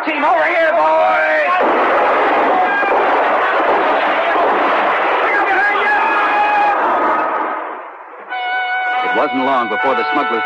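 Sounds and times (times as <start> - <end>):
speech: 0.1 - 1.5, 9.3 - 10.4
heavy gunfire in a staged firefight aimed at helicopters: 0.9 - 8.2.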